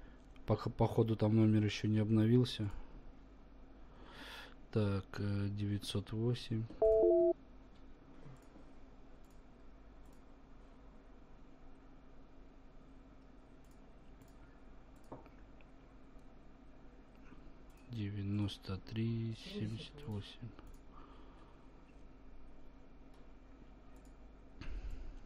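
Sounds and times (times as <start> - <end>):
faint steady hum: 0.0 - 25.2
speech: 0.5 - 2.8, 4.7 - 6.8, 18.9 - 20.8
dialing tones from a call placed through Skype: 6.8 - 7.3.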